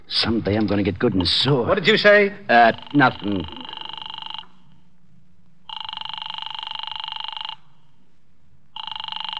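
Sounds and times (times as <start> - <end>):
faint low hum: 0.0 - 9.3
speech: 0.1 - 3.7
old telephone ringing in trilling bell bursts: 2.7 - 4.6, 5.7 - 7.8, 8.8 - 9.3.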